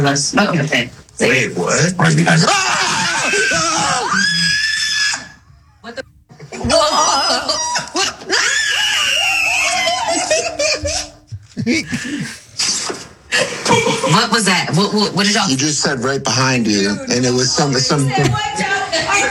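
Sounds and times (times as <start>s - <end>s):
speech: 0.0s - 3.0s, 14.3s - 19.2s
people laughing nervously: 1.2s - 15.5s, 16.6s - 19.2s
person screaming in fright: 2.6s - 5.4s, 7.6s - 11.0s.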